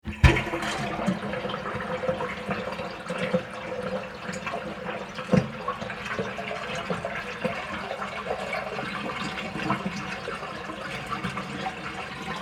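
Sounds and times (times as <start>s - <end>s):
sink draining: 0.0s - 12.4s.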